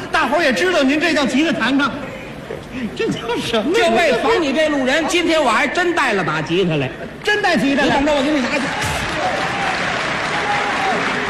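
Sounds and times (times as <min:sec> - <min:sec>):
speech: 0:00.4 - 0:02.1, 0:02.8 - 0:09.4
audience applause at a stage comedy performance: 0:08.6 - 0:11.2.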